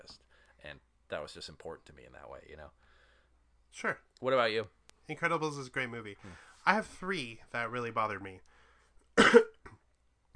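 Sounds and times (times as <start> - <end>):
speech: 0.1 - 2.9, 3.7 - 8.5
person coughing: 9.2 - 9.8.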